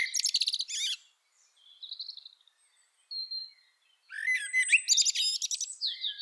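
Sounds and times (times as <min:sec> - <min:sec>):
common blackbird singing: 0:00.0 - 0:06.2.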